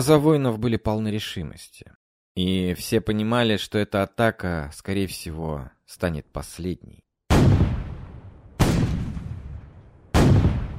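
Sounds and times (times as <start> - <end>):
speech: 0.0 - 7.0
heavy fortress cannon blasts: 7.3 - 10.7.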